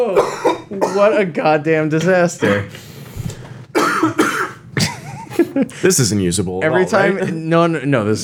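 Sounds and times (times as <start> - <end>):
person coughing harshly: 0.1 - 1.1, 3.7 - 5.7
speech: 0.9 - 2.9, 5.6 - 8.2.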